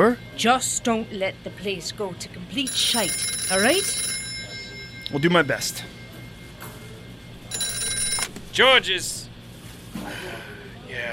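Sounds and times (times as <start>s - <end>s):
speech: 0.0s - 4.1s, 5.1s - 6.0s, 8.6s - 9.2s
telephone bell ringing: 2.6s - 9.4s.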